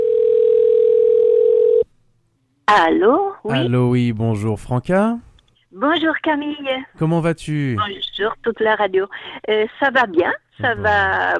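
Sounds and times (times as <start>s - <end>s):
telephone dial tone while placing a phone call: 0.0s - 1.8s
speech: 2.7s - 11.3s.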